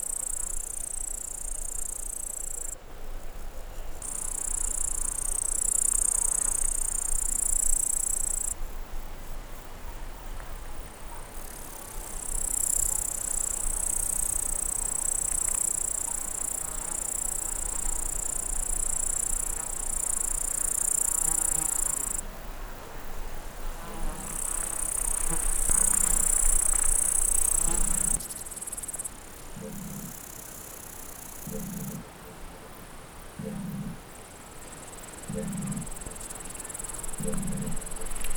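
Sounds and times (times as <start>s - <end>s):
grasshoppers and crickets chirping in an open meadow at 1600 metres altitude: 0.0s - 38.3s.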